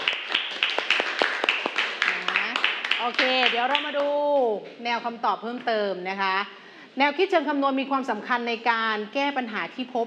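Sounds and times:
class clapping hands for a classmate: 0:00.0 - 0:04.5
speech: 0:03.0 - 0:10.0.

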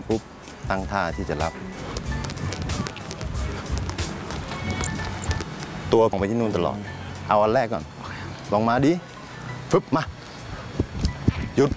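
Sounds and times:
speech: 0:00.1 - 0:01.8, 0:05.9 - 0:09.1, 0:09.7 - 0:10.2, 0:11.6 - 0:11.7
running crossover footsteps on a hard floor: 0:01.9 - 0:05.6.

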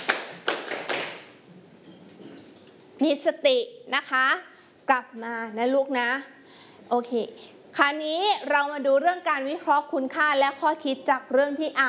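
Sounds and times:
children clapping hands: 0:00.0 - 0:01.4
speech: 0:03.0 - 0:11.8.

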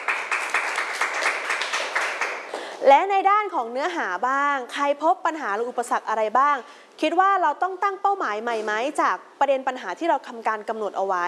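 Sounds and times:
classroom group applauding a student: 0:00.0 - 0:02.7
speech: 0:02.8 - 0:11.2.

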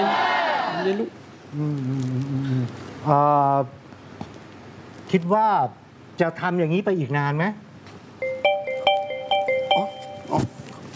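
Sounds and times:
speech: 0:00.8 - 0:03.8, 0:05.1 - 0:07.6, 0:10.3 - 0:10.6
mobile phone ringtone for an incoming call: 0:08.2 - 0:10.4.

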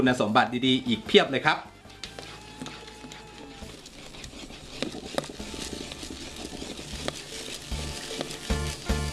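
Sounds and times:
speech: 0:00.0 - 0:01.7
bamboo stick scraping and stirring thick wet sago pearls in a brass pan: 0:00.9 - 0:09.1
soft sloshing and bubbling of sago in a brass pan: 0:02.2 - 0:09.1.

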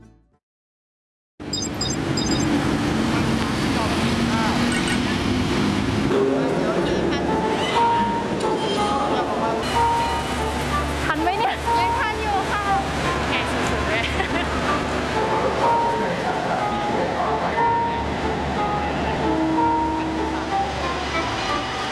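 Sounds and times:
train rolling along the rails toward Kud Mak Fai village in Udon Thani Thailand: 0:02.6 - 0:21.9.

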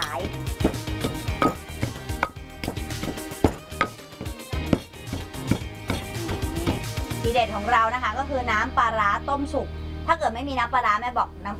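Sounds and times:
pounding fish, garlic and shallots in a mortar: 0:00.0 - 0:06.9
speech: 0:07.4 - 0:11.5.

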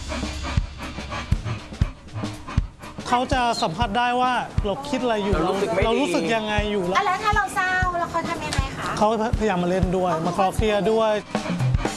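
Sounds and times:
dog imported from America panting: 0:00.0 - 0:06.9
speech: 0:03.1 - 0:11.5.

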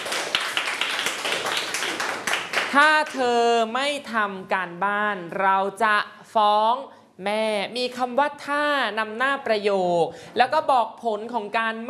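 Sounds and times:
group clapping hands in applause during a lesson: 0:00.0 - 0:03.3
speech: 0:02.7 - 0:11.8.

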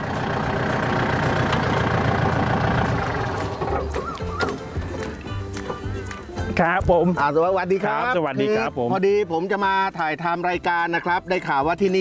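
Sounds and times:
engine idling: 0:00.0 - 0:06.0
speech: 0:06.6 - 0:11.9.

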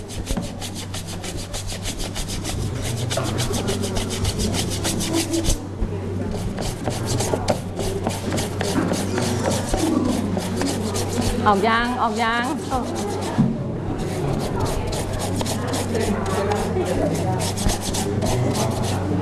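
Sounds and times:
scrubbing an object soaked in a water mixture: 0:00.0 - 0:05.6, 0:06.3 - 0:13.4, 0:14.0 - 0:19.1
speech: 0:11.5 - 0:13.1.

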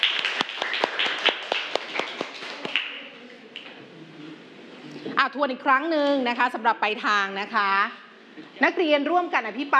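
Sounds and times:
students clapping for their classmates: 0:00.0 - 0:03.8
speech: 0:05.2 - 0:08.0, 0:08.6 - 0:09.7.

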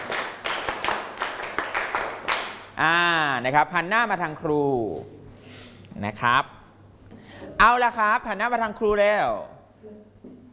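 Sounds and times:
students clapping in a rhythmic set: 0:00.0 - 0:02.8
speech: 0:02.8 - 0:05.2, 0:06.0 - 0:06.6, 0:07.4 - 0:10.4.

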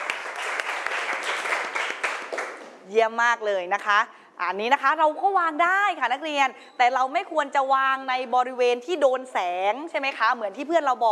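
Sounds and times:
class of students applauding: 0:00.0 - 0:02.8
speech: 0:02.9 - 0:11.1.

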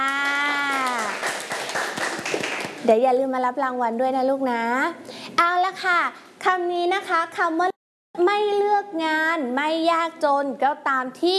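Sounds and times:
children clapping for classmates at a school prize event: 0:00.0 - 0:02.8
speech: 0:02.9 - 0:07.7, 0:08.4 - 0:11.3.

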